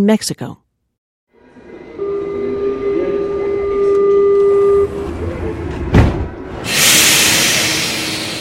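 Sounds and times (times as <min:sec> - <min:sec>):
sustained tonal whine: 0:01.4 - 0:06.7
subway train rumbling through an enclosed metro station: 0:01.4 - 0:08.4
hiss of air brakes or doors: 0:06.6 - 0:08.4.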